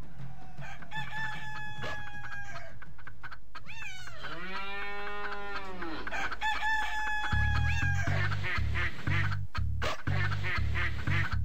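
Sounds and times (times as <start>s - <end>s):
rooster crowing: 0.0s - 2.8s, 3.7s - 8.1s
chickens clucking: 0.0s - 11.4s
ducks quacking: 0.6s - 11.4s
thumping low beat of a parody children's farm song: 7.3s - 11.4s.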